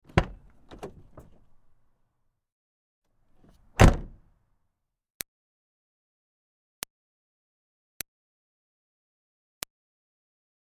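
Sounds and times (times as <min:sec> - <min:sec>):
2005 Smartcar Fortwo car door opening and closing: 0:00.0 - 0:01.6, 0:03.4 - 0:04.2.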